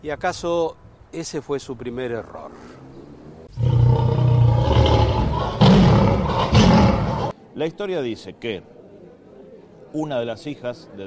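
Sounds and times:
speech: 0.0s - 2.8s, 7.6s - 8.8s, 9.9s - 11.0s
lion roaring: 3.5s - 7.3s.

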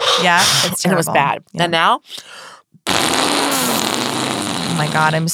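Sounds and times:
speech: 0.2s - 2.4s, 4.8s - 5.3s
fart noise made by squeezing air through cupped hands: 2.9s - 5.2s.

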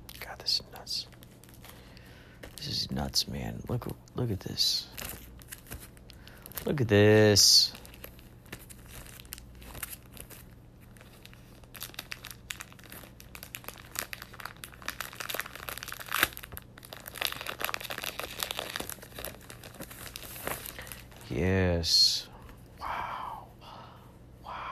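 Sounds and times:
speech: 0.4s - 1.2s, 2.6s - 5.1s, 6.6s - 7.8s, 21.4s - 22.1s
dry pages of old magazines crinkling and rustling as they are handled and turned: 4.5s - 21.4s.

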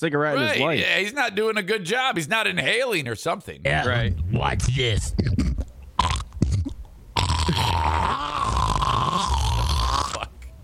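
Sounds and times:
speech: 0.0s - 5.6s
man hawking up phlegm with a gurgling throat rasp: 5.1s - 10.4s.

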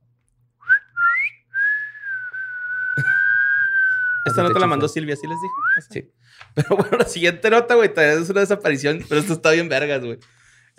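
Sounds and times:
person whistling: 0.6s - 5.9s
laughter: 3.0s - 3.4s, 6.6s - 7.3s
speech: 4.2s - 10.7s.

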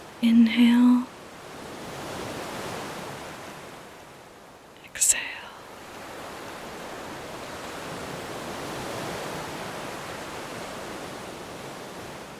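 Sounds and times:
speech: 0.2s - 1.1s
ocean waves breaking on a beach: 1.0s - 12.3s.

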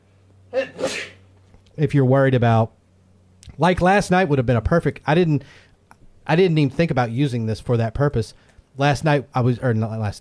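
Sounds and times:
sneeze: 0.5s - 1.2s
speech: 1.8s - 2.8s, 3.6s - 5.7s, 6.3s - 10.2s.

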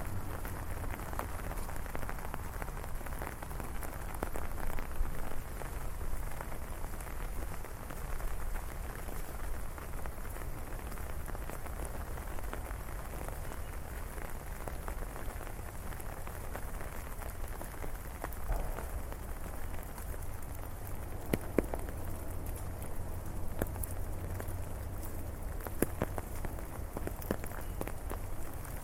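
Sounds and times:
heavy rain falling in a city: 0.0s - 28.8s
thunder echoing: 18.3s - 23.6s.

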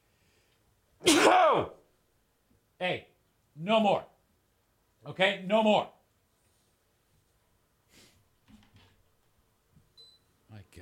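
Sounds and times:
person sneezing: 1.0s - 1.8s
speech: 2.8s - 4.1s, 5.0s - 6.0s.

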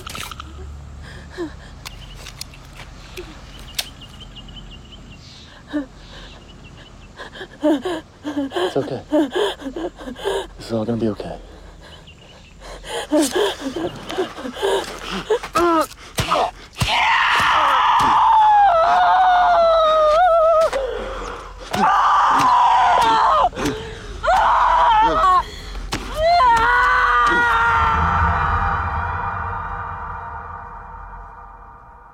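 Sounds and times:
speech: 1.4s - 1.6s, 7.6s - 11.5s, 13.1s - 16.4s
woman screaming high-pitched in a reenacted knife stabbing: 16.9s - 20.7s, 21.7s - 23.6s, 24.2s - 25.4s, 26.1s - 31.7s.

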